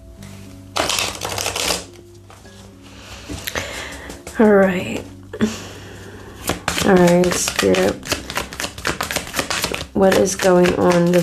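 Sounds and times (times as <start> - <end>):
deck of tarot cards riffled: 0.8 - 1.9, 6.4 - 11.2
speech: 4.4 - 5.7, 6.9 - 8.1, 10.0 - 11.2.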